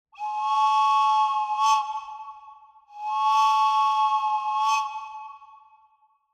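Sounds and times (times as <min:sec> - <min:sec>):
train whistle: 0:00.2 - 0:02.3, 0:02.9 - 0:05.6.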